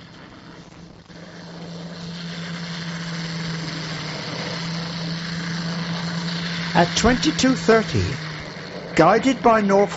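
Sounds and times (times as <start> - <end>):
engines of torpedo-carrying Swordfish propeller biplanes droning: 0.0 - 9.9
speech: 6.8 - 8.2, 9.0 - 9.9.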